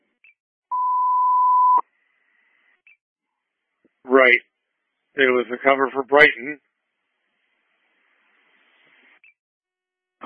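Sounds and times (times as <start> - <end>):
fire dispatch paging tone steady electronic beep: 0.7 - 1.8
speech: 5.2 - 6.7.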